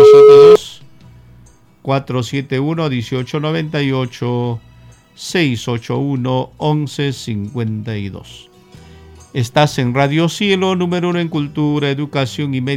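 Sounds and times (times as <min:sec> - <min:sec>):
electronic tone of a call connecting on a radio phone line: 0:00.0 - 0:00.7
speech: 0:01.9 - 0:08.5, 0:09.3 - 0:12.7.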